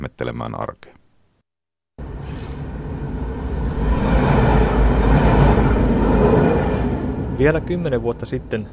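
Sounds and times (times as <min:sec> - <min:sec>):
speech: 0:00.0 - 0:01.0, 0:07.4 - 0:08.7
low tram wheel and motor drone during a ride: 0:02.0 - 0:08.7.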